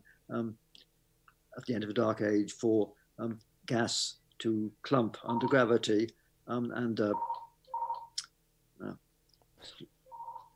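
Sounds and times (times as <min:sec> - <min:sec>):
speech: 0:00.3 - 0:00.9, 0:01.6 - 0:07.4, 0:08.8 - 0:09.0, 0:09.6 - 0:09.9
phone ringing with short electronic tones: 0:05.3 - 0:05.7, 0:07.1 - 0:08.1, 0:10.1 - 0:10.5.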